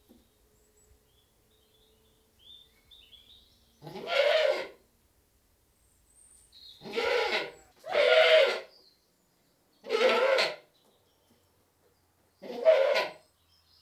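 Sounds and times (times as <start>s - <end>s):
British goat bleating: 3.8s - 4.8s, 6.8s - 8.7s, 9.9s - 10.6s, 12.4s - 13.2s.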